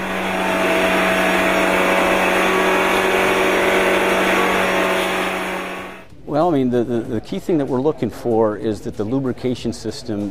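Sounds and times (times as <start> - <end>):
race car engine revving on a tilting dynamometer: 0.0 - 6.0
speech: 6.4 - 10.3.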